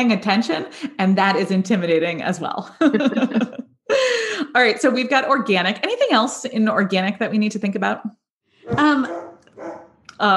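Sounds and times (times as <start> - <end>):
speech: 0.0 - 10.3
laughter: 2.8 - 3.7
little dog barking: 8.7 - 9.9.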